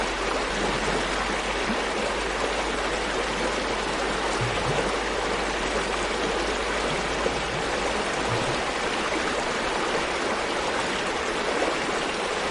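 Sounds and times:
small waterfall pouring: 0.0 - 12.4
faint low thumps: 4.3 - 9.0.

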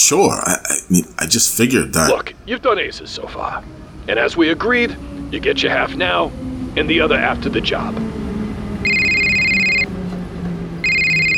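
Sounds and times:
speech: 0.1 - 8.1
cell phone ringing with an electronic trill: 8.8 - 9.9, 10.8 - 11.3.

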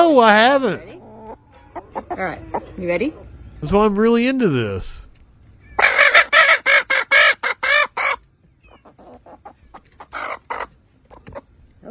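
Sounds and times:
speech: 0.0 - 1.0, 2.0 - 5.0
Easter Egger hen clucking while being tickled: 0.4 - 3.4, 5.6 - 11.8
Easter Egger hen chirps: 1.0 - 3.3, 5.5 - 11.8.

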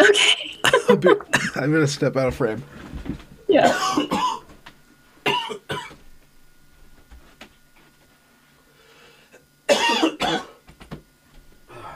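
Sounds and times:
person coughing in harsh bursts: 0.0 - 1.7, 3.6 - 4.5, 5.2 - 6.0, 9.7 - 10.6
speech: 0.9 - 4.4.

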